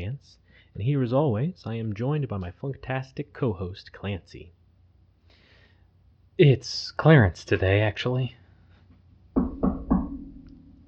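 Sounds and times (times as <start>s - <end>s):
speech: 0.0s - 4.6s, 6.4s - 8.4s
knocking on a wooden door: 9.4s - 10.4s.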